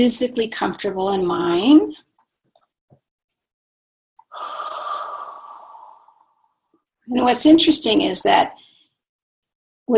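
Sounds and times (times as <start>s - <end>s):
speech: 0.0s - 2.0s, 7.1s - 8.7s
deep breath out taken slowly to relax the body: 4.3s - 6.5s.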